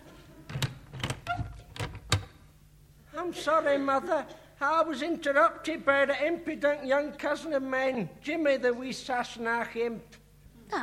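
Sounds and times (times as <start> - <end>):
wooden thuds and rattles: 0.5 - 2.3
door being pushed shut: 0.5 - 2.4
speech: 3.3 - 10.8.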